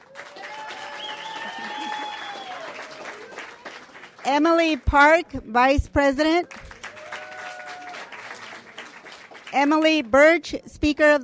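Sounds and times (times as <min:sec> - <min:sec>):
crowd applauding: 0:00.0 - 0:05.3, 0:06.4 - 0:09.9
speech: 0:04.2 - 0:06.6, 0:09.6 - 0:11.2.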